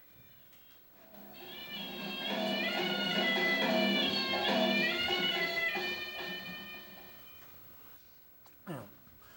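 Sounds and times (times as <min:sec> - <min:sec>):
nasal reedy wind instrument played with circular breathing by a drummer-caste musician: 0:01.0 - 0:07.9.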